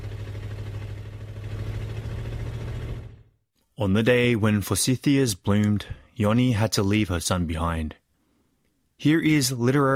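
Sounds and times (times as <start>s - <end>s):
heavy truck engine rumbling as the truck drives away: 0.0s - 3.3s
speech: 3.8s - 8.0s, 9.0s - 9.9s.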